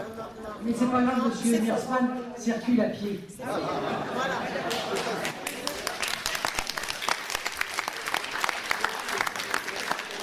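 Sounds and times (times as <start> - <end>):
speech: 0.6 - 5.4
laughter: 3.4 - 6.9
crowd applauding: 4.6 - 10.2.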